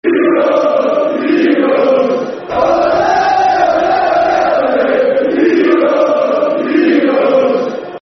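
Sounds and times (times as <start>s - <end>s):
football crowd chanting: 0.0s - 7.9s.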